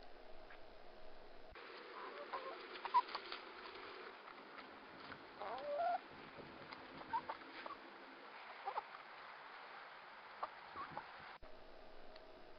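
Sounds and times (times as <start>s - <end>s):
faint hiss: 0.0s - 12.5s
chickens clucking and chirping: 1.6s - 9.3s, 10.3s - 11.4s
chickens pecking and eating seeds: 1.6s - 11.4s.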